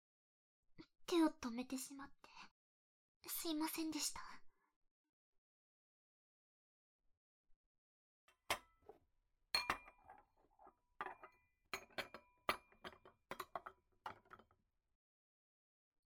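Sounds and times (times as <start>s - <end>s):
speech: 1.1s - 2.5s, 3.2s - 4.4s
dishes clinking while being put away: 8.5s - 8.7s, 9.6s - 14.5s.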